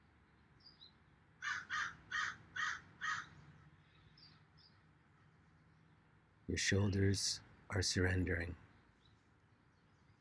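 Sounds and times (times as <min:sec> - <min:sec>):
birds calling in harsh cries: 0:01.4 - 0:04.8
speech: 0:06.5 - 0:08.6.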